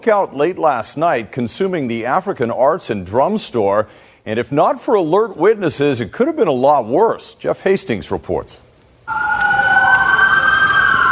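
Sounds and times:
speech: 0:00.0 - 0:09.2
emergency vehicle sirens in the distance during a two-alarm fire on West Broadway: 0:09.1 - 0:11.1.

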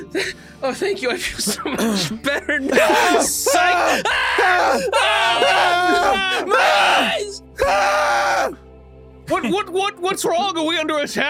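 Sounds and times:
speech: 0:00.1 - 0:08.6, 0:09.3 - 0:11.2
people screaming and groaning: 0:02.6 - 0:08.6
person exclaiming: 0:02.7 - 0:07.3.

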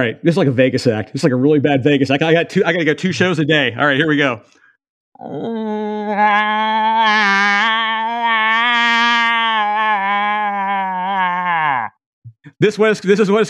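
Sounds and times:
speech: 0:00.0 - 0:04.6, 0:05.2 - 0:09.0, 0:12.5 - 0:13.4
man vocally imitating a cow moose call: 0:05.2 - 0:11.9.

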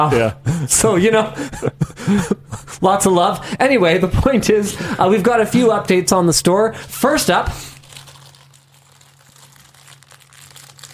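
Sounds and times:
speech: 0:00.0 - 0:07.7
paper packaging crinkling as it is handled and opened: 0:07.6 - 0:10.9.

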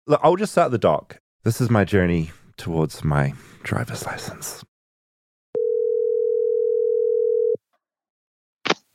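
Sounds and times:
speech: 0:00.1 - 0:04.7
telephone dial tone of outgoing call: 0:05.6 - 0:07.6.

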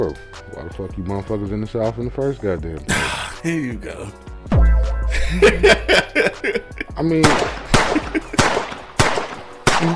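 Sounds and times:
speech: 0:00.0 - 0:04.6, 0:05.3 - 0:07.6
laughter: 0:05.1 - 0:07.1, 0:07.7 - 0:08.4
gunshots with tails: 0:07.2 - 0:09.9.

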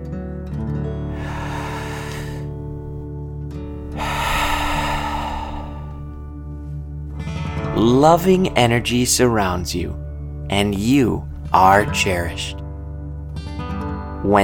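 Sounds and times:
deep breathing during a guided relaxation exercise: 0:01.0 - 0:07.4
sustained musical drone: 0:01.2 - 0:06.6
speech: 0:07.8 - 0:12.6, 0:14.2 - 0:14.4.

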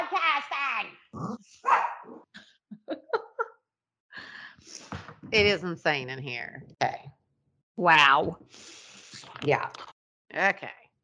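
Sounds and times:
dogs barking: 0:01.6 - 0:02.2
laughter: 0:02.8 - 0:03.5
speech: 0:05.3 - 0:07.0, 0:07.8 - 0:08.7, 0:09.4 - 0:09.8, 0:10.4 - 0:10.8.

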